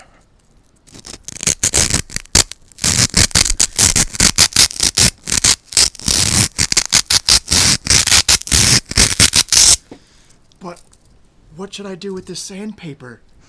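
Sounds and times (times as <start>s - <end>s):
styrofoam pieces rubbed together: 0.7s - 9.9s
speech: 11.7s - 13.3s.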